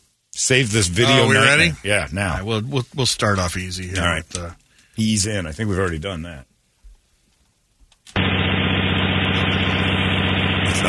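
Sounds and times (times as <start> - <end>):
speech: 0.5 - 6.5
engine running at a steady loud idle: 8.2 - 10.8.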